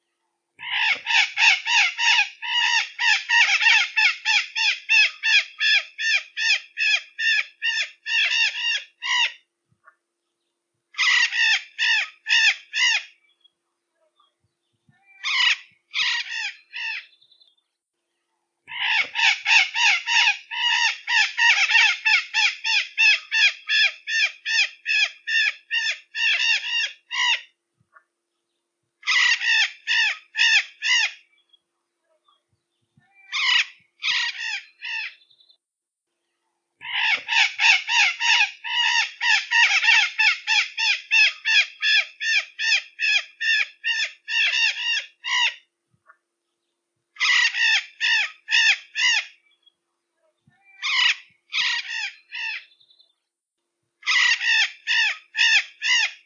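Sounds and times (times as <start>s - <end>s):
maracana verdadeira parrot calling: 0.6s - 9.4s, 10.9s - 13.2s, 14.9s - 17.2s, 18.7s - 27.5s, 29.0s - 31.2s, 33.0s - 35.4s, 36.8s - 45.7s, 47.2s - 49.4s, 50.5s - 53.0s, 54.0s - 56.2s.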